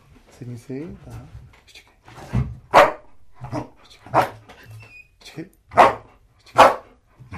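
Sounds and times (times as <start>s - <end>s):
speech: 0.4s - 1.4s
black female German Shepherd drug-detection dog barking on command: 2.7s - 4.4s, 5.7s - 7.0s.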